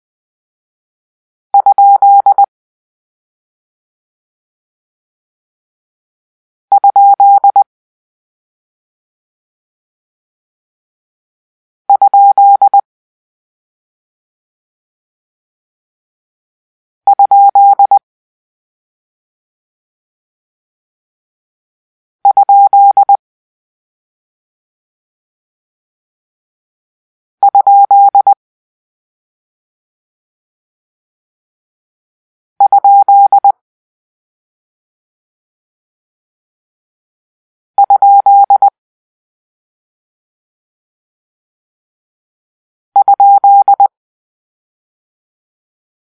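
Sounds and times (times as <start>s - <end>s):
morse code for a question mark: 1.6s - 2.5s, 6.8s - 7.6s, 12.0s - 12.8s, 17.1s - 18.0s, 22.3s - 23.2s, 27.4s - 28.4s, 32.6s - 33.5s, 37.8s - 38.7s, 43.0s - 43.9s.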